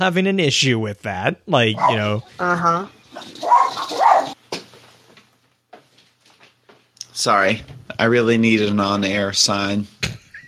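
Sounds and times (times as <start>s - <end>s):
speech: 0.0s - 4.1s, 7.2s - 10.2s
dogs barking: 1.8s - 2.1s, 3.2s - 4.4s.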